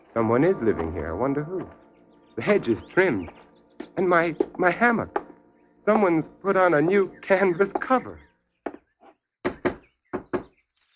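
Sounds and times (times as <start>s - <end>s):
speech: 0.2s - 1.8s, 2.4s - 3.4s, 4.0s - 5.2s, 5.8s - 8.3s
knocking on a house door: 3.2s - 5.3s, 7.7s - 8.0s, 8.6s - 10.6s.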